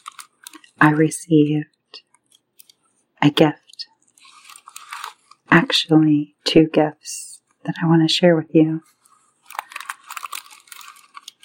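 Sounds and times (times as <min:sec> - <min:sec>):
silver and gold tissue paper gift wrapping crinkling: 0:00.0 - 0:01.0, 0:04.0 - 0:05.6, 0:08.8 - 0:11.4
speech: 0:00.8 - 0:01.7, 0:03.2 - 0:03.6, 0:05.5 - 0:08.9.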